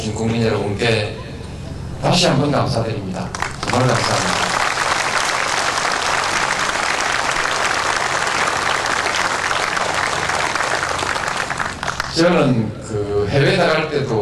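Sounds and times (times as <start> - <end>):
speech: 0.0 - 1.3, 2.0 - 4.4, 12.2 - 14.2
large audience applauding after a speech: 3.3 - 12.2.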